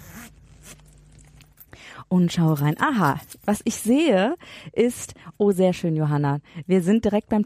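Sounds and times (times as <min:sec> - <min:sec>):
zipper of an old-rose leather purse being pulled open: 0:00.0 - 0:01.7
speech: 0:01.9 - 0:07.4.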